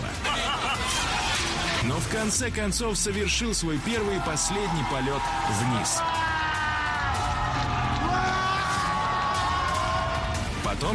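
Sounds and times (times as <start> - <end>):
laughter: 0.0 - 1.9
dense crowd of young people shouting and whooping as monuments are toppled: 0.0 - 10.9
speech: 2.0 - 6.3, 10.8 - 10.9.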